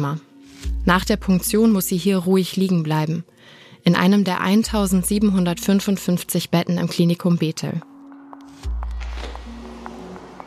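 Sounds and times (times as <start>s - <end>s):
speech: 0.0s - 7.9s
footsteps in a quiet hospital corridor: 7.8s - 10.4s.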